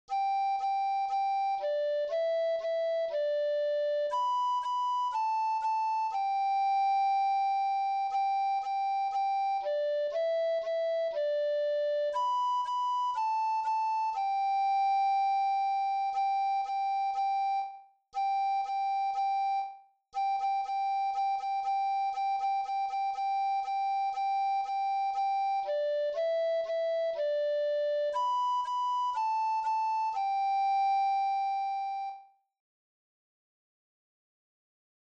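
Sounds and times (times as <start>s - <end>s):
recorder melody: 0.1s - 19.6s, 20.2s - 32.2s.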